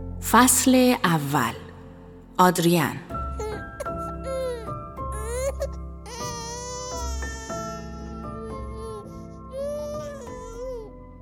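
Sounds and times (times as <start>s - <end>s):
speech: 0.2s - 1.6s, 2.4s - 3.1s
faint steady tonal background: 0.2s - 11.2s
baby in the neighbouring apartment crying loudly: 3.4s - 10.9s.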